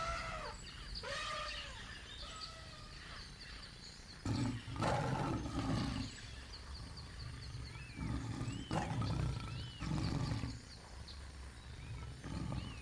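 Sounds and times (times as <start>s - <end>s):
birds chirping and whistling: 0.0s - 12.8s
lion roaring: 4.2s - 10.7s, 11.7s - 12.8s.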